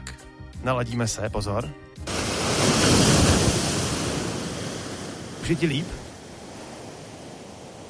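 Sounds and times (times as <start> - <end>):
speech: 0.6 - 3.1, 5.4 - 6.0
ocean waves washing onto the shore: 2.0 - 7.8.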